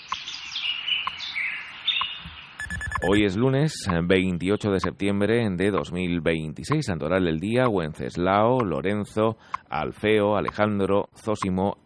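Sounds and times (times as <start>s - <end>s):
small birds chirping at dawn in Madrid: 0.0s - 5.1s
speech: 3.0s - 11.8s.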